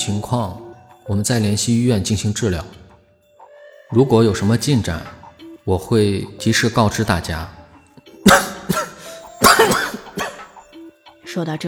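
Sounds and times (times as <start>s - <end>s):
speech: 0.0s - 2.8s, 3.9s - 7.6s, 11.4s - 11.6s
man coughing: 8.2s - 10.5s.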